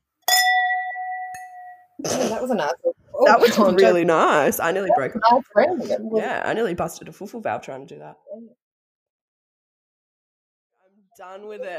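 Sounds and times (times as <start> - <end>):
drinking glasses clinking in a toast: 0.2 - 2.0
laughter: 2.0 - 6.2
speech: 2.0 - 8.6, 11.2 - 11.7.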